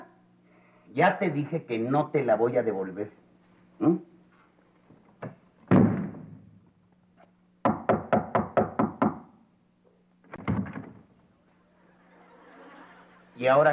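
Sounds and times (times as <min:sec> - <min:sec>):
faint steady hum: 0:00.0 - 0:13.7
speech: 0:00.9 - 0:03.2, 0:03.8 - 0:04.1, 0:13.4 - 0:13.7
young girl knocking loudly on a door: 0:07.6 - 0:09.3
laughter: 0:11.6 - 0:13.7.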